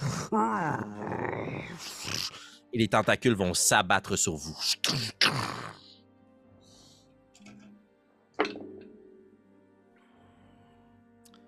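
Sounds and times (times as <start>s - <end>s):
deep rumbling monster growl voiced by a person: 0.0s - 2.5s, 4.8s - 5.8s
speech: 0.3s - 5.8s.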